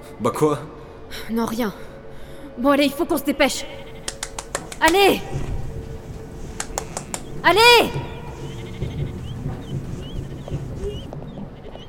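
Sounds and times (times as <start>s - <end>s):
speech: 0.2s - 1.9s, 2.6s - 3.8s, 4.8s - 5.6s, 7.4s - 8.1s
several sheep bleating over one another: 3.7s - 9.7s.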